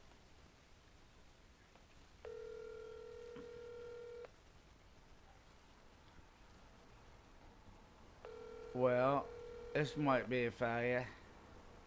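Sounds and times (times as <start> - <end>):
steady electronic phone ringback tone: 2.2 - 4.3, 8.3 - 10.0
speech: 8.8 - 11.2.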